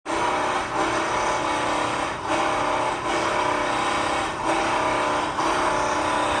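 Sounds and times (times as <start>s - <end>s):
riveter: 0.1s - 6.3s.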